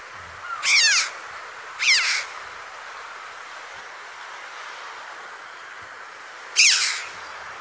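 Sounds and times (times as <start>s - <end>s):
faint steady hiss: 0.0s - 7.6s
red-billed chough calling: 0.4s - 1.2s, 1.8s - 2.4s, 6.6s - 7.4s.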